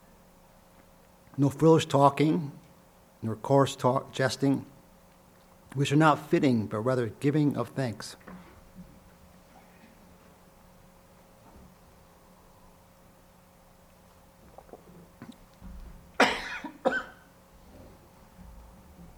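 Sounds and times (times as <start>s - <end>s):
quiet steady hum: 0.0s - 19.1s
speech: 1.4s - 2.6s, 3.2s - 4.7s, 5.7s - 8.3s
sharp loud coughs: 16.2s - 17.3s.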